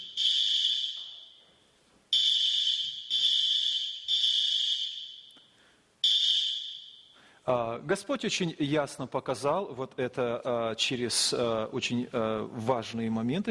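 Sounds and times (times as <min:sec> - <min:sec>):
loud shrill electronic alarm being checked: 0:00.0 - 0:01.4, 0:02.1 - 0:05.4, 0:06.0 - 0:07.2
speech: 0:07.5 - 0:13.4.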